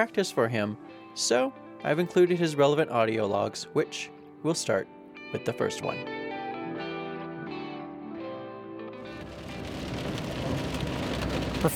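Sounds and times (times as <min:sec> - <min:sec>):
speech: 0:00.0 - 0:06.2
thunderstorm rainfall on Route 66 in Oklahoma heard while driving: 0:09.1 - 0:11.7.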